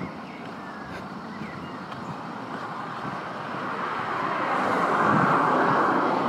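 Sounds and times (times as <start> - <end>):
steady broadband roar of traffic: 0.0 - 6.2
car passing with tyre hiss on the road: 1.0 - 6.2.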